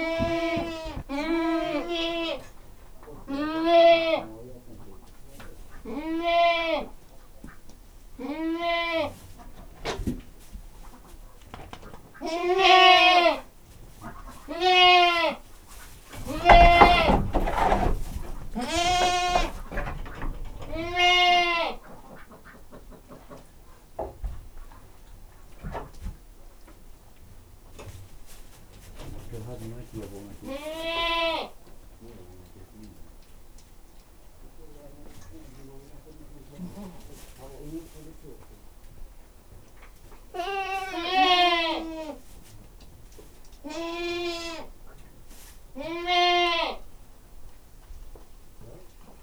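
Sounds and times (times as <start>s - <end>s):
domestic goat bleating in a farmyard: 0.0s - 4.3s, 5.7s - 7.1s, 8.2s - 9.3s, 12.2s - 15.5s, 16.1s - 21.9s, 30.4s - 31.6s, 40.3s - 42.2s, 43.6s - 44.8s, 45.7s - 46.9s.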